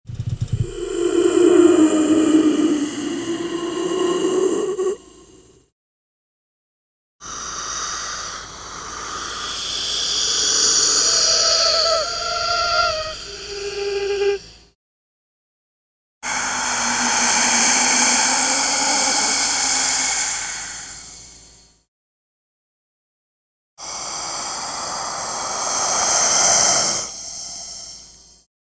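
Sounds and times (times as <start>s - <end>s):
ghost breathing: 0.3s - 5.7s, 7.2s - 14.5s, 16.2s - 21.7s, 23.8s - 28.5s.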